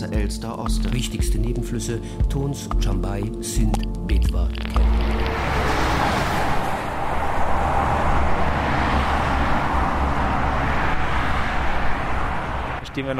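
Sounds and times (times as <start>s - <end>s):
speech: 0.0s - 5.8s, 13.0s - 13.1s
distant rumble of harbor and road traffic: 3.8s - 13.1s.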